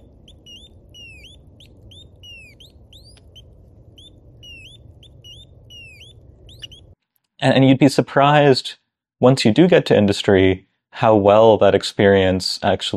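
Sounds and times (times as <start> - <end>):
analog circuit birds making electronic bird calls: 0.0 - 7.0
steady low hum: 0.0 - 7.0
speech: 7.4 - 12.9.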